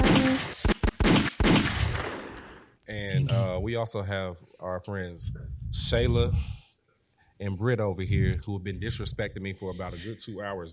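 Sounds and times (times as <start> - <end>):
gunshot sound effects: 0.0 - 2.6
speech: 3.6 - 6.6, 7.4 - 10.7.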